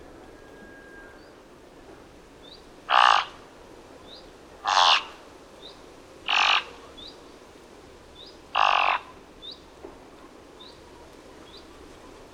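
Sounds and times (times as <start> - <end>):
thick-billed raven calling: 2.9 - 3.4, 4.6 - 5.2, 6.2 - 6.8, 8.5 - 9.2.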